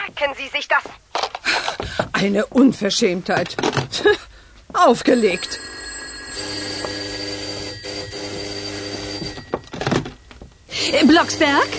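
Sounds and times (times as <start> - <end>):
speech: 0.2 - 5.7, 10.9 - 11.7
electric doorbell ringing: 5.0 - 11.7.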